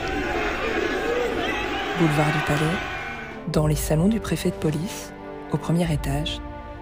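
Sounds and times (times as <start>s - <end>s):
dense crowd booing and jeering in Paris: 0.0s - 3.4s
speech: 2.0s - 6.5s.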